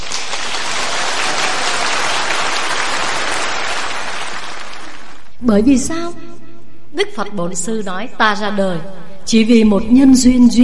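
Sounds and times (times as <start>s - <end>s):
large audience applause: 0.0s - 5.4s
speech: 5.4s - 6.2s, 7.0s - 10.6s.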